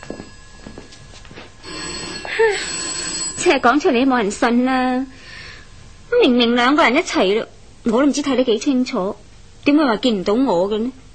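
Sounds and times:
telephone ringing in a home: 0.0 - 4.6
speech: 3.4 - 5.2, 6.2 - 11.0.

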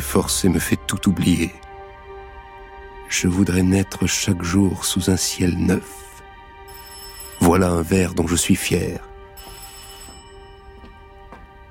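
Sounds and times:
speech: 0.1 - 1.6, 3.1 - 6.1, 7.4 - 9.1
telephone ringing: 6.7 - 7.6, 9.4 - 10.7.

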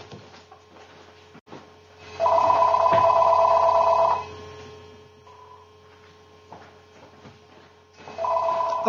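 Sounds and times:
steady low hum: 0.0 - 8.7
telephone ringing in a sustained electronic burst: 2.0 - 5.7, 8.0 - 8.8
faint short tone: 4.2 - 5.8.

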